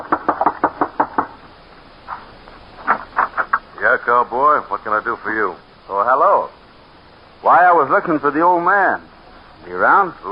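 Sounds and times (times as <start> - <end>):
knocking on a wooden front door: 0.0 - 1.4
speech: 4.0 - 6.6, 7.4 - 10.3.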